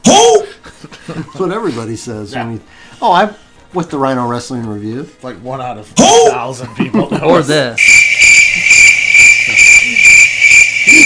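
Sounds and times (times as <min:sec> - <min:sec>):
speech: 0:01.1 - 0:08.0
cricket chirping sound effect: 0:07.8 - 0:11.0.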